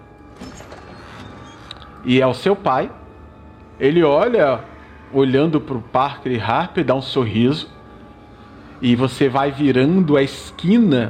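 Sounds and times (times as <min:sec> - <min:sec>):
door creaking open: 0:00.2 - 0:02.1
speech: 0:02.0 - 0:03.0, 0:03.8 - 0:07.8, 0:08.8 - 0:11.0.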